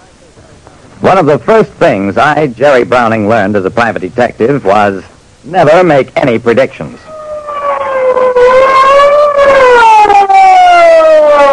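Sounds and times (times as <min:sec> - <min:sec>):
speech: 0:01.1 - 0:07.1
big police car siren wailing: 0:07.0 - 0:11.5.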